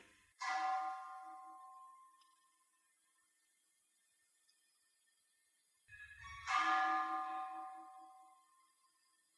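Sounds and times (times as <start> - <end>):
temple bell struck and ringing: 0.4 - 2.7, 5.9 - 8.8.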